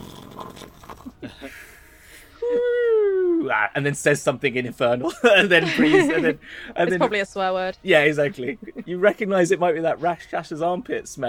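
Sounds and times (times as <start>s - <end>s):
voice imitating loud snoring in a tabletop role-playing game: 0.0s - 1.2s
speech: 3.5s - 11.2s
laughter: 5.0s - 7.2s.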